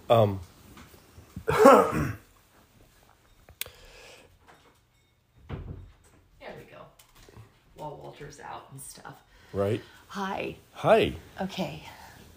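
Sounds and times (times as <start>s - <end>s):
speech: 0.1s - 0.5s, 1.5s - 2.2s, 7.8s - 12.0s
door being shut: 5.4s - 6.0s.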